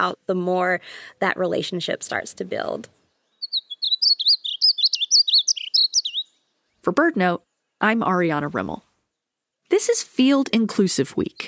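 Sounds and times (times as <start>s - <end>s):
speech: 0.0s - 3.0s, 6.8s - 8.9s, 9.7s - 11.4s
Painted Bunting song: 1.5s - 11.4s.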